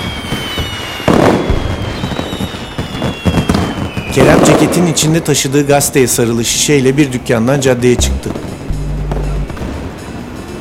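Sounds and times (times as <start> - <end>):
fireworks crackling and banging on a crowded street: 0.0 - 5.6, 8.0 - 10.5
speech: 4.2 - 8.4.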